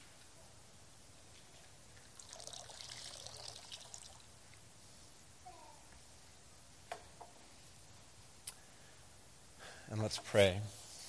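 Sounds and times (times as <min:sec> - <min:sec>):
water pouring into baptismal font: 0:02.0 - 0:04.3
speech: 0:09.9 - 0:10.8.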